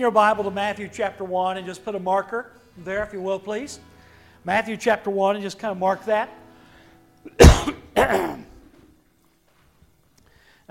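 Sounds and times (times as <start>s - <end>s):
speech: 0.0s - 6.4s, 7.2s - 8.4s
person coughing: 7.3s - 8.7s.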